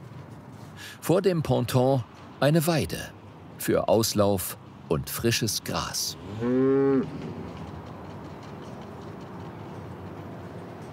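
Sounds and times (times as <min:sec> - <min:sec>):
speech: 0:00.8 - 0:07.7
cow mooing on a floating cowshed in Rotterdam: 0:06.2 - 0:07.2.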